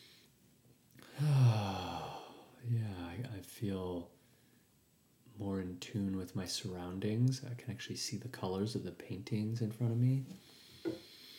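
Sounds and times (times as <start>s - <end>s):
drawn-out yawn with low voiced groan: 1.0s - 2.5s
speech: 3.2s - 4.2s, 5.4s - 10.6s.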